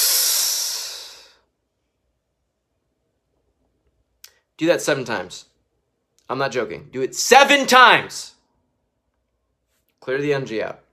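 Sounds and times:
slow exhale of breath: 0.0 - 1.5
speech: 4.6 - 5.5, 6.3 - 8.4, 10.0 - 10.8.

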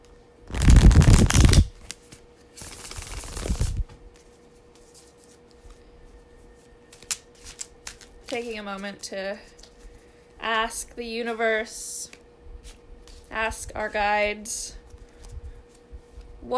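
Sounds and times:
tarot deck being shuffled: 0.5 - 5.8, 6.9 - 10.0
speech: 8.4 - 9.6, 10.4 - 12.0, 13.3 - 14.8.

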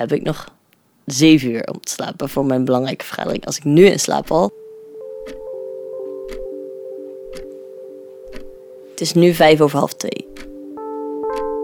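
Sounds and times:
speech: 0.0 - 4.6, 9.0 - 10.5
clock ticking: 3.1 - 11.6
sustained tonal hum: 3.6 - 11.6
soft drifting notes: 3.8 - 11.6.

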